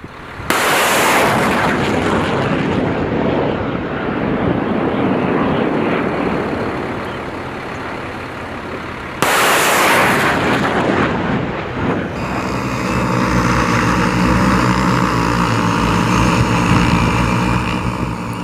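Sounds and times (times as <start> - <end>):
aircraft engine droning with a tonal hum: 0.0 - 18.4
cannon blasts from military war drills in the Hawaiian islands: 0.4 - 7.6, 8.6 - 15.4.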